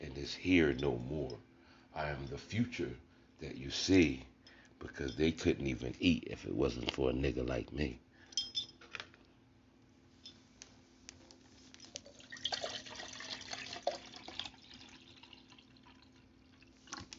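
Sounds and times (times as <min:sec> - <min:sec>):
low hum: 0:00.0 - 0:17.1
speech: 0:00.2 - 0:08.0
light glass clinks: 0:08.3 - 0:08.9
drink pouring into an emptied glass: 0:12.0 - 0:17.1.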